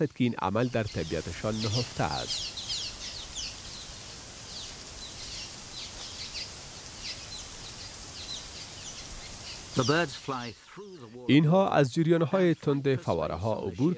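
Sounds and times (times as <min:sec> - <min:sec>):
speech: 0:00.0 - 0:02.6, 0:09.8 - 0:13.9
many birds calling over one another on cliffs: 0:00.0 - 0:13.9
loud harsh bird squawk: 0:00.7 - 0:11.2.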